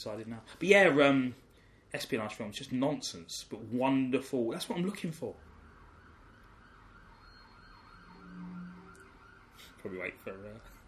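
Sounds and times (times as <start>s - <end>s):
speech: 0.0s - 5.5s, 9.8s - 10.7s
police siren wailing outside heard through a wall: 5.3s - 10.3s.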